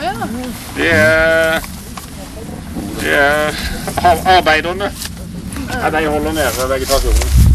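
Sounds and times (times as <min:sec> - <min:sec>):
speech: 0:00.2 - 0:01.8, 0:02.7 - 0:05.1, 0:05.7 - 0:07.4
single loud wavering sheep bleat: 0:00.8 - 0:01.6.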